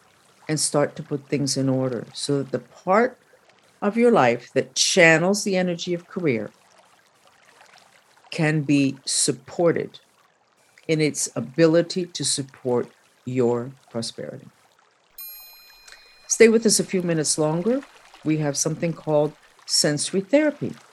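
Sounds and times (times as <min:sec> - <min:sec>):
running water: 0:00.0 - 0:20.9
speech: 0:00.5 - 0:03.2, 0:03.8 - 0:06.6, 0:08.4 - 0:10.0, 0:10.9 - 0:14.6, 0:16.4 - 0:20.9
faint high ringing tone: 0:15.2 - 0:18.3.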